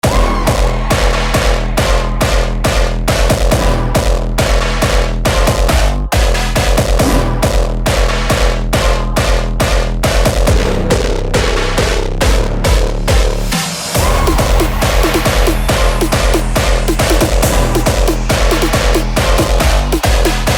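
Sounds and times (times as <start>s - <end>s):
hardstyle music: 0.0s - 20.5s.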